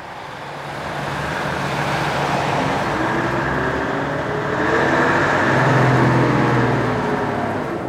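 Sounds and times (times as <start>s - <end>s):
city bus engine rumbling in traffic: 0.0s - 7.8s
road noise from inside a moving city bus: 0.0s - 7.8s.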